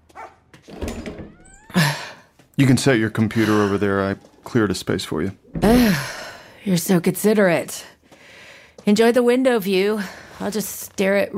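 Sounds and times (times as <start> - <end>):
dog barking with excited yaps: 0.1 - 0.4
speech: 2.6 - 7.9, 8.8 - 11.3.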